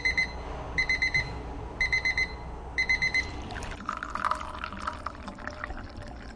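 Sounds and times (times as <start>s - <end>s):
tea timer beeping at a tea house in Portland: 0.0s - 3.4s
liquid being poured: 3.3s - 6.3s.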